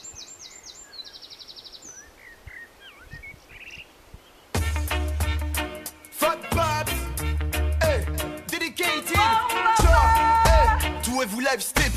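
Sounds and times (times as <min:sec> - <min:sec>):
birds chirping and trilling: 0:00.0 - 0:04.6, 0:05.4 - 0:06.5
soft outdoor hiss: 0:00.0 - 0:11.9
music with a heavy bass beat: 0:04.6 - 0:11.9
speech: 0:11.2 - 0:11.8.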